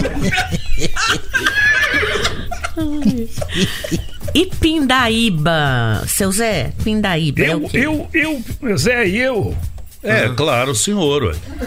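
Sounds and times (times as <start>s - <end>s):
laughter: 0.0s - 4.6s, 11.3s - 11.6s
horse neighing with shaky wavering whinny: 1.3s - 2.6s
speech: 3.6s - 11.6s.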